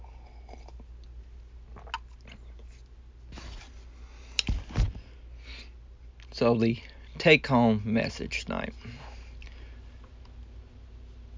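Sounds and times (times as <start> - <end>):
mouth and swallowing noises from sipping coffee: 0.0 - 2.8
low steady hum: 0.0 - 11.3
speech: 6.4 - 9.1.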